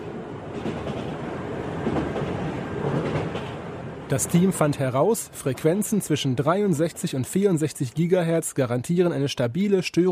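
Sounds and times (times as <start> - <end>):
train rumbling past on a railway line beside a test site: 0.0 - 8.6
faint rhythmic clatter of train wheels: 0.4 - 3.8
speech: 0.6 - 1.0, 4.1 - 10.1.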